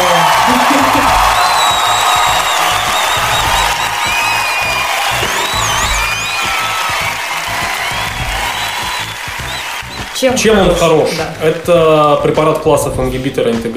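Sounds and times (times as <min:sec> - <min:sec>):
high whistles from a crowd: 0:00.0 - 0:10.4
large crowd cheering and shouting hurrah: 0:00.0 - 0:12.5
speech: 0:10.2 - 0:13.7.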